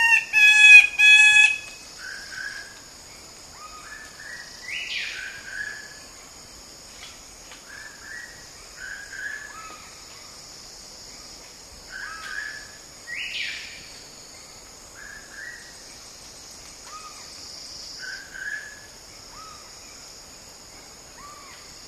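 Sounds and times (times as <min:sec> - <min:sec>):
king bird-of-paradise whistled calls: 0:00.0 - 0:01.8
steady high insect drone: 0:00.0 - 0:21.8.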